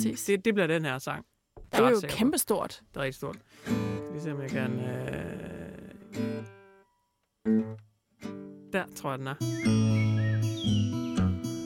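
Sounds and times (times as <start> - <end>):
speech: 0.0 - 5.5, 6.1 - 6.5, 8.7 - 10.8
tame birds chirping and tweeting: 9.4 - 11.6.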